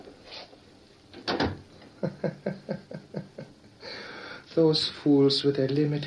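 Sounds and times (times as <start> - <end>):
door shutting with a solid thump: 1.2 - 1.6
laughter: 2.0 - 3.6
speech: 4.6 - 6.0.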